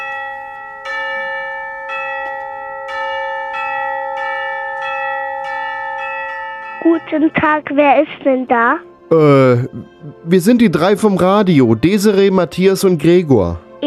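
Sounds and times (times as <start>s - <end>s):
gate bell ringing in clear resonant strikes: 0.0s - 7.8s
speech: 6.8s - 13.8s.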